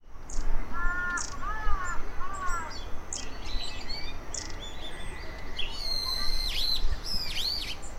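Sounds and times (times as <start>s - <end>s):
several wild birds calling: 0.3s - 7.8s.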